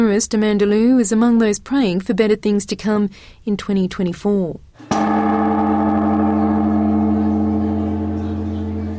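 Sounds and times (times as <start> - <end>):
speech: 0.0 - 5.4
huge temple bell in Tokyo struck with a wooden pole to ring in the new year: 4.8 - 8.9.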